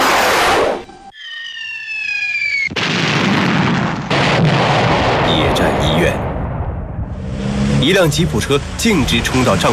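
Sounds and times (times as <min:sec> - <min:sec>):
falling whistle of an incoming shell: 0:01.1 - 0:02.8
thundering explosions and rumbling fire: 0:02.7 - 0:07.3
heavy battle blasts: 0:02.8 - 0:09.7
speech: 0:07.9 - 0:09.7.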